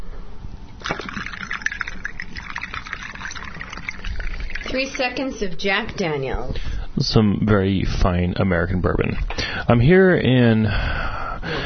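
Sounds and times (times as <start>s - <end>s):
Diet Coke pouring into a glass: 0.8s - 5.4s
speech: 4.7s - 11.6s.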